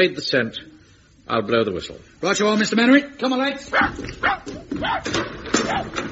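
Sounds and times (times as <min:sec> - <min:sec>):
speech: 0:00.0 - 0:00.7, 0:01.3 - 0:06.1
dog barking and whimpering yelps: 0:03.7 - 0:06.1.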